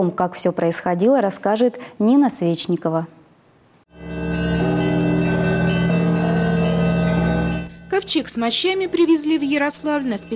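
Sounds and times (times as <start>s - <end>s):
speech: 0.0s - 3.2s, 8.0s - 10.3s
church bells ringing: 3.9s - 10.3s.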